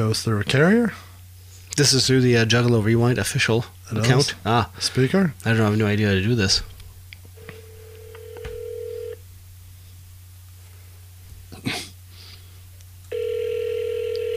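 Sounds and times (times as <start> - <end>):
speech: 0.0 - 1.1, 1.8 - 6.7
phone call ring tones through the line: 7.5 - 9.2, 13.1 - 14.3.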